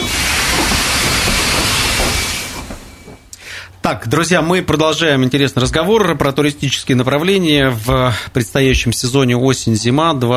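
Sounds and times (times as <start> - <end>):
metro train moving off with rushing hiss and whine: 0.0 - 3.6
speech: 3.9 - 10.3.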